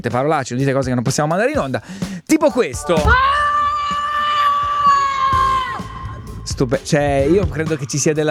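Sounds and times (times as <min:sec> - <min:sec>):
speech: 0:00.0 - 0:04.0, 0:06.5 - 0:08.2
person screaming in a recorded voice message: 0:03.1 - 0:06.5.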